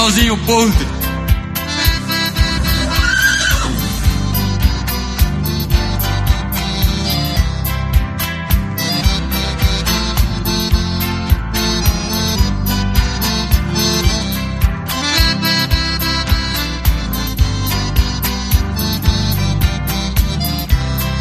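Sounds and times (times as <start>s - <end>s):
speech: 0.0s - 1.0s
loud rhythmic music with a steady pounding beat: 0.0s - 21.2s
horse whinny: 2.6s - 4.1s.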